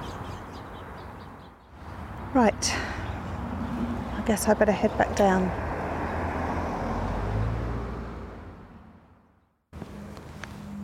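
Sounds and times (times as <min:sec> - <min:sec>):
small songbirds chirping in a tree: 0:00.0 - 0:04.3
loud road traffic rushing past: 0:00.0 - 0:10.8
speech: 0:02.3 - 0:03.0, 0:04.3 - 0:05.6.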